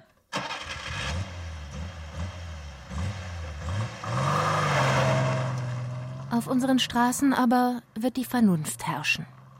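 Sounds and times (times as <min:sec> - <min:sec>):
old petrol car engine revving at full throttle: 0:00.4 - 0:07.5, 0:08.2 - 0:09.5
speech: 0:06.4 - 0:09.4.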